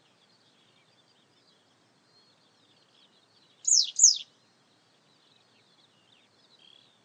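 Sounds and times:
Citrine wagtail (Motacilla citreola) buzzy rasping double call: 3.7 - 4.2.

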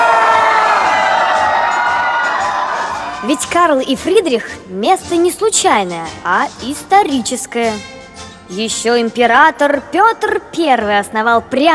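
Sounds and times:
crowd cheering and shouting joyfully: 0.0 - 3.6
speech: 3.3 - 11.7.

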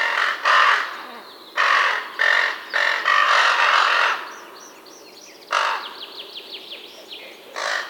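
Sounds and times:
raven adults calling while feeding young: 0.0 - 4.5, 5.5 - 6.0, 7.0 - 7.8.

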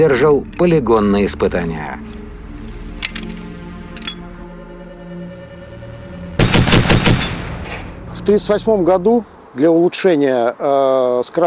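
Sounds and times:
speech: 0.0 - 2.1, 8.2 - 11.4
low rumbling noise: 0.0 - 11.4
belt-fed machine gun firing: 6.4 - 7.6.

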